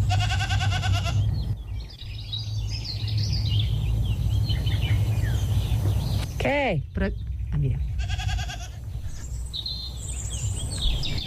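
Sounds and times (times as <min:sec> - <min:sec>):
goat in la Garrotxa letting out a loud quavering bleat: 0:00.0 - 0:01.2, 0:08.0 - 0:08.9
birds chirping and twittering: 0:00.0 - 0:11.2
steady low rumble: 0:00.0 - 0:11.2
speech: 0:06.4 - 0:07.9.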